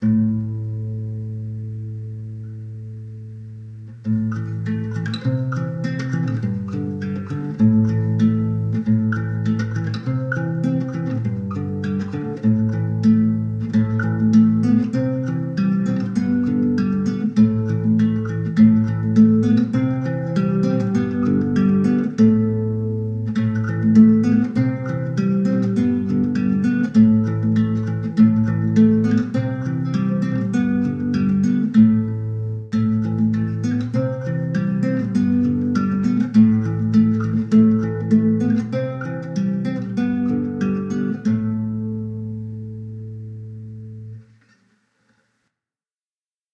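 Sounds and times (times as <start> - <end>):
guitar song: 0.0 - 44.7.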